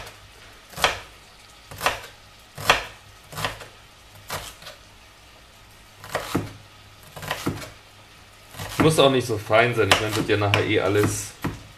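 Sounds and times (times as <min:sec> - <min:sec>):
knife chopping vegetables on a cutting board: 0:00.0 - 0:01.1, 0:01.7 - 0:04.8, 0:06.0 - 0:07.8, 0:08.5 - 0:09.0, 0:09.8 - 0:11.7
speech: 0:08.8 - 0:11.4.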